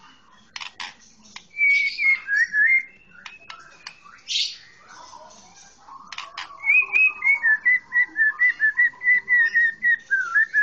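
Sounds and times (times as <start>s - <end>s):
Oriental magpie-robin song of clicks and whistled notes: 1.4s - 4.8s, 6.1s - 10.6s.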